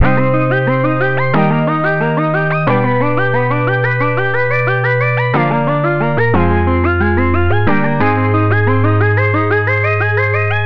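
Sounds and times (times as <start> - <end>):
arpeggio: 0.0 - 10.6.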